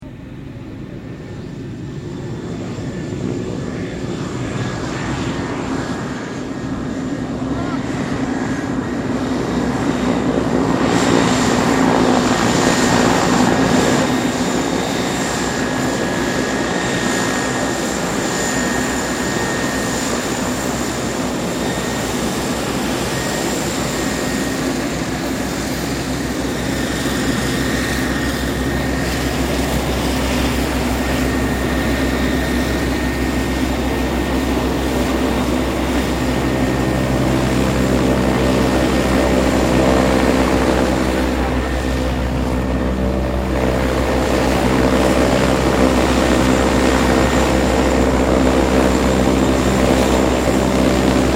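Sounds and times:
large multi-propeller airplane taxiing: 0:00.0 - 0:51.3.

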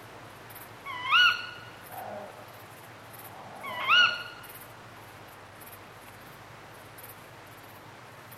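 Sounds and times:
dark bush-crickets chirping in chorus: 0:00.0 - 0:08.3
tawny owl hunting calls: 0:00.8 - 0:02.5, 0:03.6 - 0:04.5.

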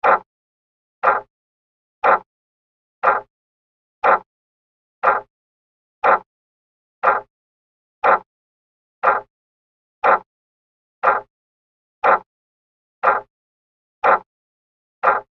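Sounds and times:
household clock ticking: 0:00.0 - 0:00.3, 0:01.0 - 0:01.3, 0:02.0 - 0:02.3, 0:03.0 - 0:03.3, 0:04.0 - 0:04.3, 0:05.0 - 0:05.3, 0:06.0 - 0:06.3, 0:07.0 - 0:07.3, 0:08.0 - 0:08.3, 0:09.0 - 0:09.3, 0:10.0 - 0:10.3, 0:11.0 - 0:11.3, 0:12.0 - 0:12.3, 0:13.0 - 0:13.3, 0:14.0 - 0:14.3, 0:15.0 - 0:15.3.

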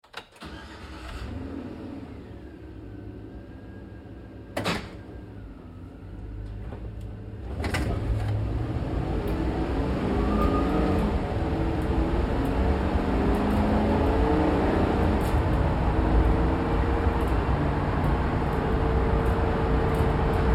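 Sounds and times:
GMC Savana truck interior driving, accelerating and decelerating at medium-fast speed: 0:04.5 - 0:20.5.

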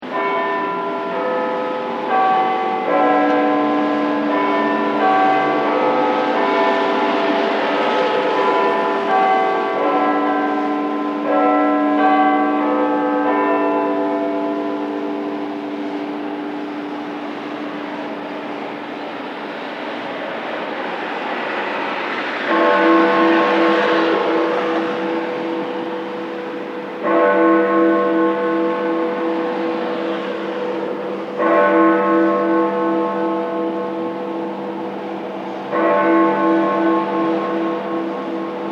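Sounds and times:
bells of Big Ben at midnight: 0:00.0 - 0:38.6
midnight traffic: 0:00.0 - 0:38.6.

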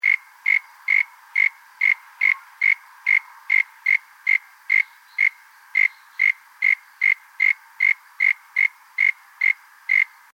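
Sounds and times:
Australian frog calling in short bright tonal pips: 0:00.0 - 0:10.2.

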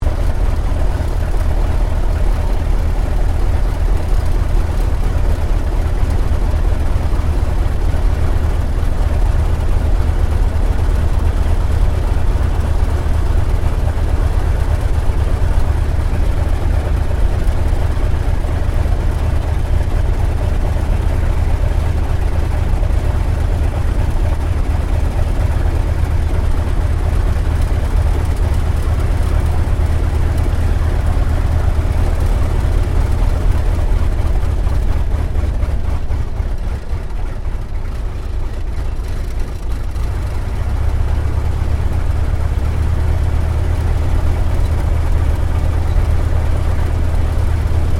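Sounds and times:
T-28D Trojan aircraft idling heard from interior: 0:00.0 - 0:47.9.

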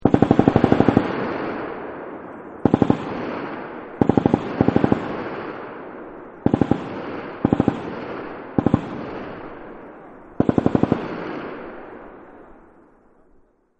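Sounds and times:
M249 machine gun burst at long distance: 0:00.0 - 0:05.8, 0:06.4 - 0:09.8, 0:10.4 - 0:12.1.

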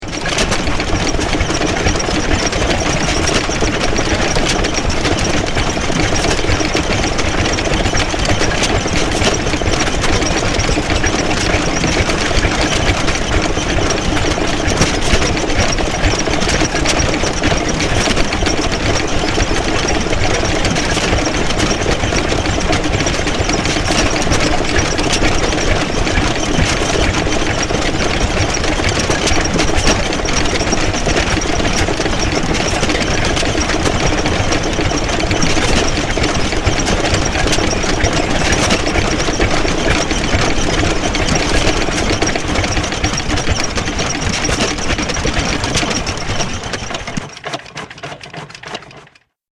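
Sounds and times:
old vintage motor spluttering and grinding to a halt: 0:00.1 - 0:49.2.

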